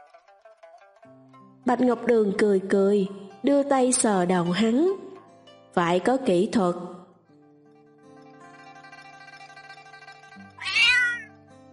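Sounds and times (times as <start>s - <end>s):
speech: 1.0s - 5.0s, 5.8s - 7.0s
brown cat meowing: 10.5s - 11.3s.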